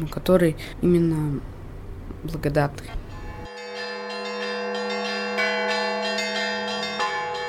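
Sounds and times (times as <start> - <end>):
speech: 0.0 - 1.6, 2.2 - 3.0
church bells ringing in a big city: 3.1 - 7.4.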